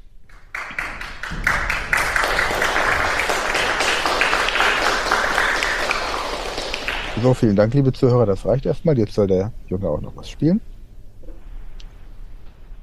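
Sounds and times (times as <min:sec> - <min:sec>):
audience applauding: 0:00.3 - 0:07.6
speech: 0:07.2 - 0:10.7.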